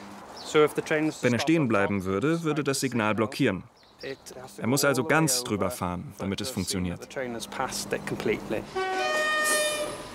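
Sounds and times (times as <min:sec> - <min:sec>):
speech: 0:00.5 - 0:09.2
train horn blaring as train arrives at station: 0:08.6 - 0:10.1.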